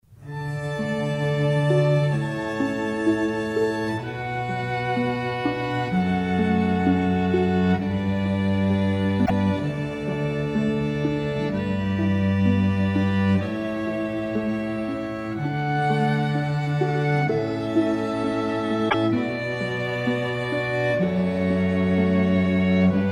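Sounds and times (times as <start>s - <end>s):
string quartet playing a canon: 0.2s - 23.1s.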